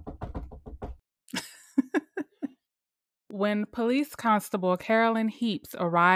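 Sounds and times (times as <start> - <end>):
knocking on a wall: 0.0 - 1.0
laughter: 1.4 - 2.5
speech: 3.4 - 6.1.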